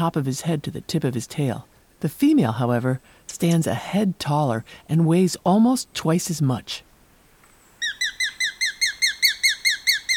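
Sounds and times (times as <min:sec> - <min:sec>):
speech: 0:00.0 - 0:06.9
small slender gray and rufous hawk calling shrill piercing notes: 0:07.8 - 0:10.1.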